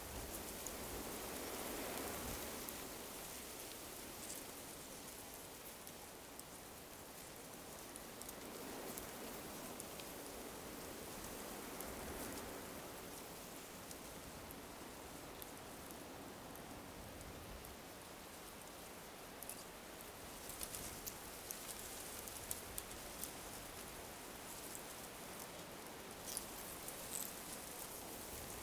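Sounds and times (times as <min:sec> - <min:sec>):
calm outdoor wind: 0:00.0 - 0:28.6.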